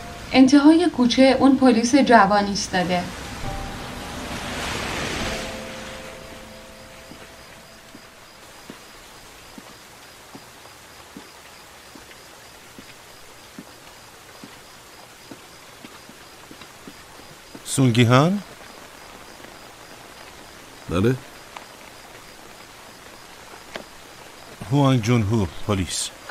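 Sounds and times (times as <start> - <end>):
rain hissing on a street: 0.0 - 26.2
speech: 0.3 - 3.2, 17.8 - 18.5, 20.9 - 21.3, 24.7 - 26.2.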